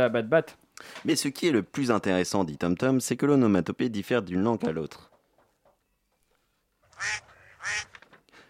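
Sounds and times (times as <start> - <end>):
speech: 0.0 - 5.1, 7.0 - 7.9
duck quacking: 6.9 - 8.0.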